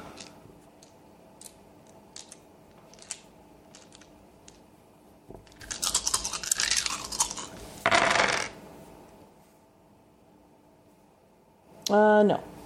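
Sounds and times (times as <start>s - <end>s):
handful of dice rattling and clattering onto a hard surface: 0.2s - 4.6s, 5.5s - 8.6s.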